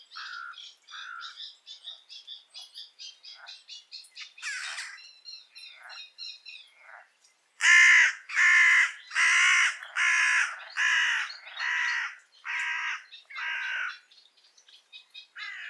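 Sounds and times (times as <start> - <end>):
Carrion crow cawing, Corvus corone: 0.1 - 1.4, 4.4 - 5.0, 7.6 - 14.0, 15.4 - 15.6.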